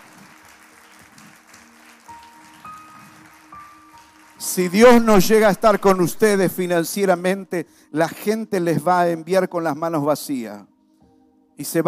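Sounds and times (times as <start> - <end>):
church audience applauding: 0.0 - 6.6
speech: 4.5 - 10.7, 11.6 - 11.8.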